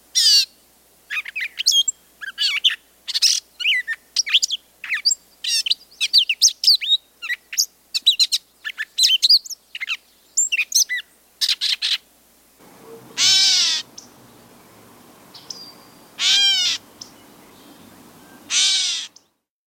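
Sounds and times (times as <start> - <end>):
low background hiss: 0.0 - 19.5
gray catbird mewing calls in the Chicago region: 12.6 - 19.2.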